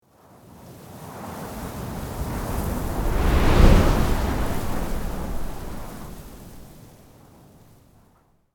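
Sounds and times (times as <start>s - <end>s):
strong desert wind blowing sand and dust: 1.9s - 6.7s.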